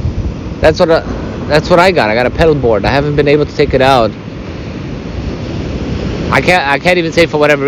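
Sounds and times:
ocean waves breaking on beach: 0:00.0 - 0:07.6
wind: 0:00.0 - 0:07.6
speech: 0:00.6 - 0:04.2, 0:06.3 - 0:07.6.

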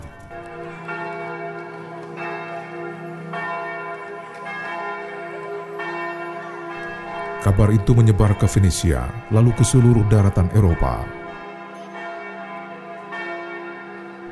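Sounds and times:
European church bells pealing: 0:00.0 - 0:14.2
speech: 0:07.4 - 0:11.2.

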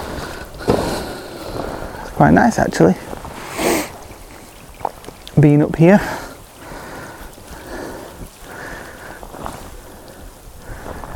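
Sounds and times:
low rumble of wind: 0:00.0 - 0:11.1
steady rain falling outdoors: 0:00.0 - 0:11.1
speech: 0:02.2 - 0:03.2, 0:05.4 - 0:06.2.

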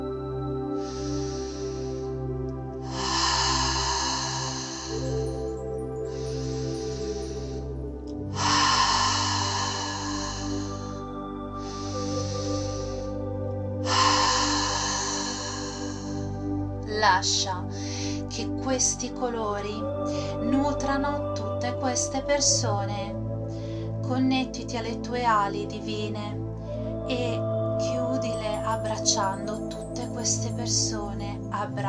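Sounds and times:
slow deep inhale and exhale breathing: 0:00.0 - 0:16.9, 0:17.6 - 0:18.4, 0:23.1 - 0:24.0, 0:26.4 - 0:30.4
soft sustained musical drone: 0:00.0 - 0:31.8
speech: 0:17.2 - 0:17.6, 0:18.4 - 0:23.2, 0:24.1 - 0:26.4, 0:27.1 - 0:31.8.

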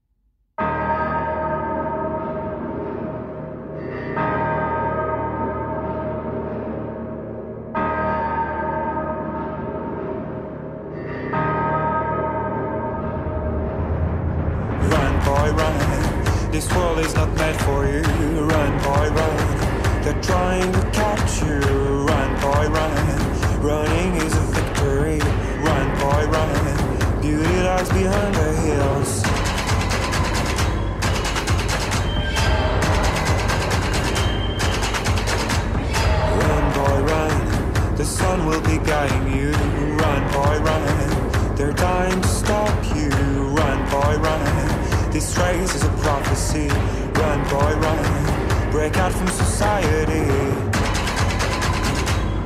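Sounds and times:
sustained bell-like chords: 0:00.6 - 0:45.0
song playing: 0:00.6 - 0:52.4
pounding drums: 0:14.8 - 0:52.4
speech: 0:17.0 - 0:19.4, 0:20.1 - 0:21.9, 0:27.3 - 0:29.2, 0:38.2 - 0:40.9, 0:45.2 - 0:50.7.

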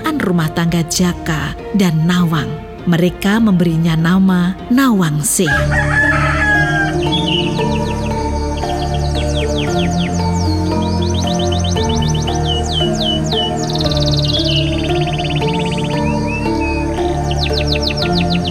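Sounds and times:
birds chirping: 0:00.0 - 0:18.4
speech: 0:00.2 - 0:06.2
rooster crowing loudly: 0:05.5 - 0:07.8.

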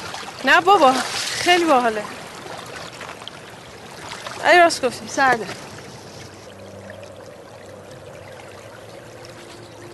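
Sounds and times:
qanat water stream rushing and gurgling: 0:00.0 - 0:09.9
speech: 0:00.4 - 0:02.2, 0:04.4 - 0:05.6.

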